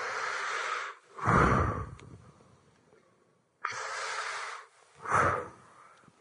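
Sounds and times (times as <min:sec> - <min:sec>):
deep inhaling breaths: 0:00.0 - 0:02.4, 0:03.6 - 0:06.1.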